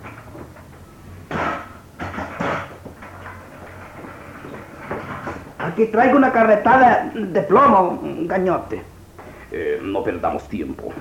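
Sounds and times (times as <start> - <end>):
heavy knocks: 0.0 - 5.8
steady low mechanical hum: 0.0 - 10.9
door scraping shut with a bang: 1.3 - 5.5
speech: 5.8 - 8.9, 9.5 - 10.9.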